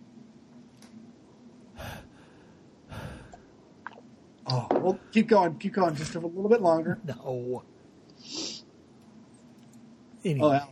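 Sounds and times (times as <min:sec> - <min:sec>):
quiet hum: 0:00.0 - 0:10.7
heavy breathing close to the microphone: 0:01.8 - 0:03.5
speech: 0:04.5 - 0:08.4, 0:10.2 - 0:10.7.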